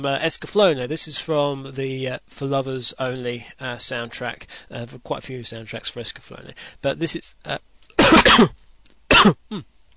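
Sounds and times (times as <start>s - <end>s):
speech: 0.0s - 8.6s, 9.2s - 9.7s
person coughing from a tickly throat into a microphone: 8.0s - 9.7s.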